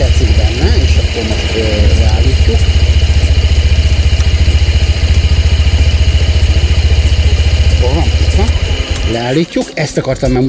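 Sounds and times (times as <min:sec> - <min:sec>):
Honda PCX 125 scooter engine idling quietly: 0:00.0 - 0:10.4
speech: 0:09.3 - 0:10.4.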